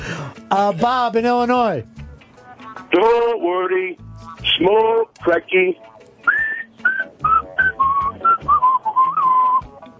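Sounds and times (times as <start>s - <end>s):
speech: 0.5s - 2.0s, 2.9s - 5.9s
person whistling a short tune: 6.2s - 9.8s.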